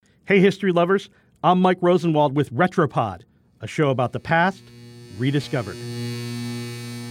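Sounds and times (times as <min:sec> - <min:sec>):
speech: 0:00.3 - 0:06.2
electrical hum of mains electricity: 0:03.8 - 0:07.0.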